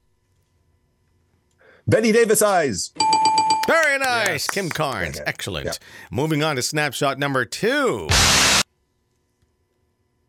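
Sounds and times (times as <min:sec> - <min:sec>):
speech: 0:01.8 - 0:08.6
short loud burst of broadband static: 0:08.1 - 0:08.7.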